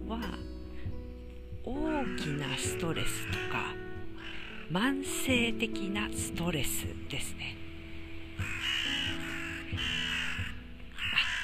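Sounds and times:
speech: 0.1s - 0.5s, 1.6s - 3.8s, 4.7s - 7.6s
crow cawing outdoors: 1.8s - 4.8s, 8.4s - 11.4s.

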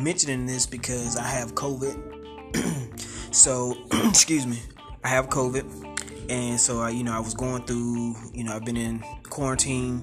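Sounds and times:
speech: 0.0s - 10.0s
person clearing their throat: 2.5s - 3.1s, 3.9s - 4.3s.

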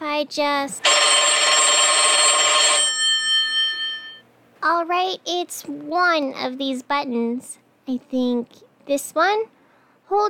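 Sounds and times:
speech: 0.2s - 1.2s, 4.6s - 10.2s
telephone ringing: 0.8s - 4.2s.

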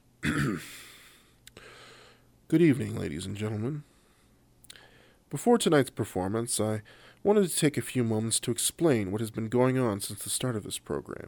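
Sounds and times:
low gravelly throat-clearing grumble: 0.2s - 0.8s
speech: 0.5s - 0.8s, 2.5s - 3.9s, 5.3s - 11.2s.

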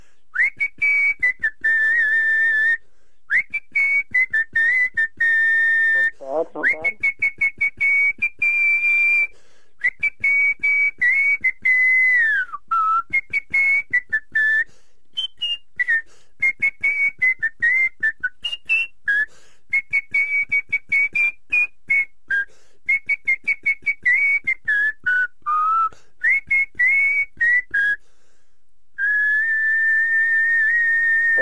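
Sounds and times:
person whistling a melodic tune: 0.3s - 28.0s, 29.0s - 31.3s.

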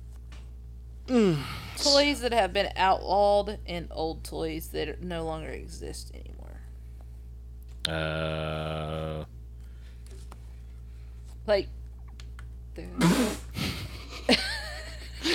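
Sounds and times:
low steady hum: 0.0s - 15.3s
speech: 1.1s - 6.5s, 7.9s - 9.4s, 11.5s - 11.8s, 12.8s - 13.4s
person sneezing onto a guitar: 13.0s - 13.8s.

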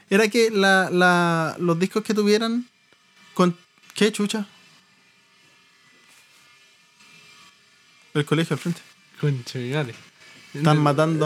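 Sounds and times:
power drill whirring: 0.0s - 11.2s
speech: 0.1s - 2.7s, 3.4s - 4.6s, 8.2s - 11.2s.

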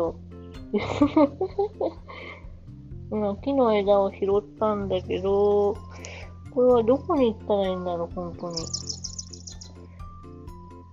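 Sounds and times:
speech: 0.0s - 2.0s, 3.1s - 6.0s, 6.6s - 9.0s
laughter: 0.8s - 1.9s
bird chirps in an open-world video game: 8.4s - 9.8s.

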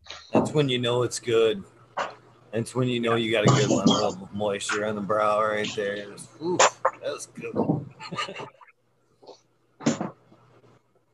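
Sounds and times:
speech: 0.4s - 1.7s, 2.5s - 8.6s
hard cough: 3.5s - 4.2s
laughter: 8.0s - 8.7s.

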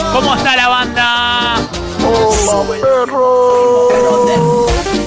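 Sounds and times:
speech: 0.2s - 4.7s
dog howling: 3.7s - 4.9s.

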